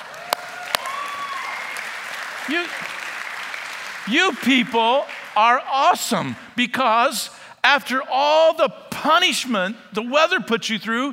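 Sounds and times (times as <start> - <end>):
audience applauding for farmers: 0.0 - 6.6
speech: 2.5 - 3.0, 4.1 - 11.1.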